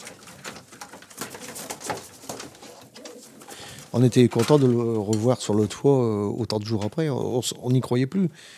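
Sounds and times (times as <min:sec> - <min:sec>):
pigeons cooing: 0:00.0 - 0:04.0
pigeon wings rustling and fluttering: 0:00.0 - 0:04.9
speech: 0:03.9 - 0:08.5.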